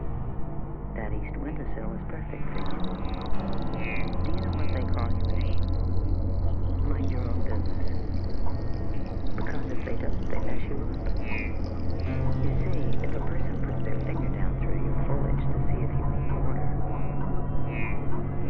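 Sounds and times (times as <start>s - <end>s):
low constant hum: 0.0s - 18.4s
water pouring into a plant pot: 2.6s - 14.4s.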